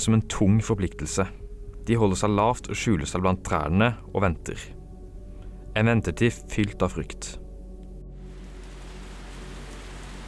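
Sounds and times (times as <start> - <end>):
speech: 0.0 - 4.8, 5.8 - 7.4
steady dense heavy rainfall: 8.2 - 10.2.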